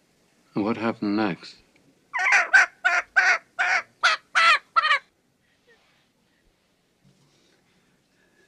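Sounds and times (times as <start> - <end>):
speech: 0.6 - 1.6
chicken squawking: 2.1 - 5.1.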